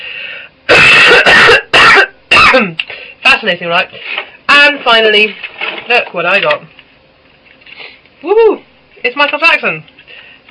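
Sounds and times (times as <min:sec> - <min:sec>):
person coughing harshly: 0:00.7 - 0:02.8
speech: 0:03.4 - 0:06.8, 0:08.2 - 0:09.9.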